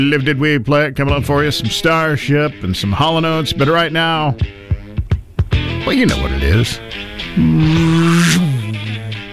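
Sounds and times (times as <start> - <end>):
speech: 0.0 - 4.6, 5.9 - 8.5
man's voice imitating a speeding car engine: 5.8 - 9.0.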